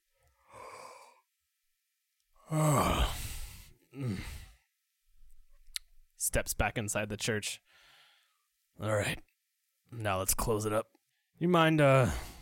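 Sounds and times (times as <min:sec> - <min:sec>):
person yawning: 0:02.4 - 0:04.5
speech: 0:02.5 - 0:03.2, 0:06.3 - 0:07.8, 0:08.8 - 0:09.3, 0:09.9 - 0:12.3.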